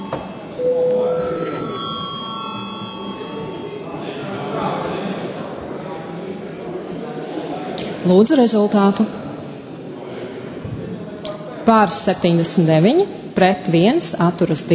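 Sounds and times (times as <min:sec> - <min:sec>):
bell ringing to open a vote in the Latvian parliament: 0:00.0 - 0:04.1
speech: 0:08.0 - 0:09.2, 0:11.7 - 0:14.7.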